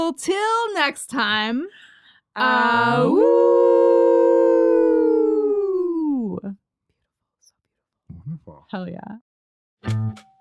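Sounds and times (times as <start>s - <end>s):
speech: 0.1s - 4.2s, 8.5s - 9.2s, 9.8s - 10.3s
several people howling together in a group howl: 2.5s - 6.3s.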